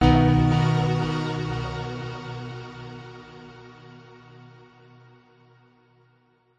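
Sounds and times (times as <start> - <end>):
short simple warm chords musical logo: 0.0 - 3.0.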